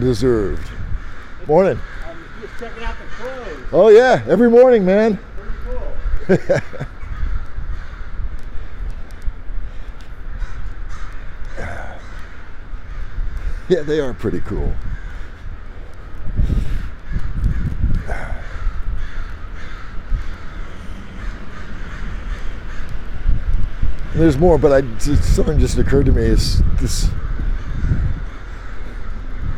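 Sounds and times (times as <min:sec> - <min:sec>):
speech: 0:00.0 - 0:00.8, 0:01.4 - 0:05.3, 0:06.3 - 0:06.9, 0:13.7 - 0:14.9, 0:24.2 - 0:27.2
crows cawing outdoors: 0:00.0 - 0:29.5
steady wind or traffic rumble: 0:00.0 - 0:29.5
laughter: 0:06.2 - 0:07.1.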